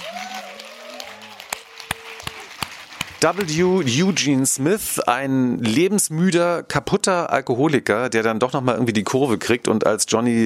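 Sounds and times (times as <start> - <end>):
crowd in Berlin applauding an actor: 0.0 - 4.9
speech: 3.2 - 10.4.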